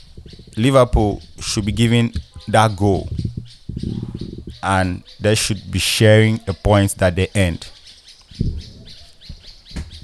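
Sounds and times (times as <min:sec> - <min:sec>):
low thuds: 0:00.0 - 0:04.7
birds chirping: 0:00.0 - 0:10.0
speech: 0:00.3 - 0:03.2, 0:04.6 - 0:07.8.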